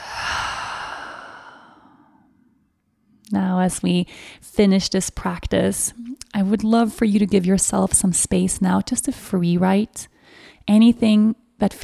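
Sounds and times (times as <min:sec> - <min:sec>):
deep slow breath during a guided breathing practice: 0:00.0 - 0:02.5
speech: 0:03.3 - 0:11.8.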